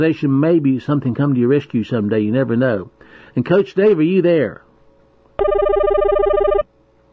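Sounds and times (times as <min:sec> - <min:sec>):
speech: 0:00.0 - 0:04.6, 0:05.4 - 0:06.5
telephone ringing with a bright electronic warbling tone: 0:05.4 - 0:06.7.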